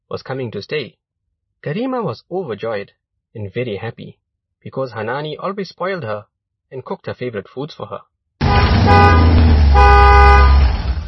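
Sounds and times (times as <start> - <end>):
speech: 0.1 - 1.0, 1.6 - 9.3
car horn beeping: 8.4 - 10.9
idling car engine: 8.4 - 11.0.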